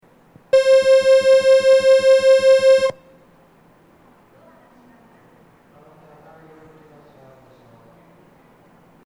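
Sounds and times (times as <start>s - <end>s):
Eidan departure signal buzzer from a BOSE flat loudspeaker: 0.6s - 3.0s.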